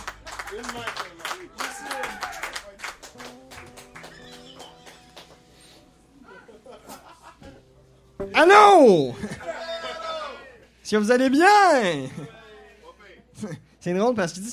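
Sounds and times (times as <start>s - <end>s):
audience applause: 0.0s - 6.0s
speech: 0.5s - 2.4s, 8.2s - 9.4s, 10.9s - 12.2s, 13.4s - 14.5s
audience laughter: 4.0s - 7.7s, 9.1s - 10.4s.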